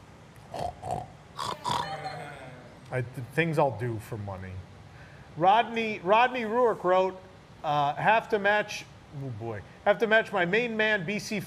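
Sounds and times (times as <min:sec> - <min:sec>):
man imitating pig with nasal snorting oinks: 0:00.5 - 0:02.7
speech: 0:02.9 - 0:04.7, 0:05.4 - 0:11.4.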